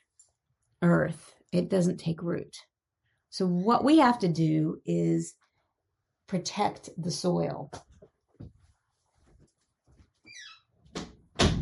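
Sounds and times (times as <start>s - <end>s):
speech: 0.8s - 2.7s, 3.3s - 5.4s, 6.3s - 7.9s
faint shuffling: 7.8s - 10.3s
brief high door squeak: 10.3s - 10.8s
door thudding shut and latching: 11.0s - 11.5s.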